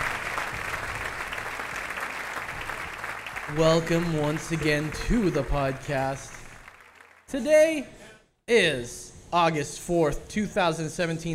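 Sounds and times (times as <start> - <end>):
audience clapping: 0.0 - 7.4
speech: 3.5 - 6.4, 7.3 - 11.3.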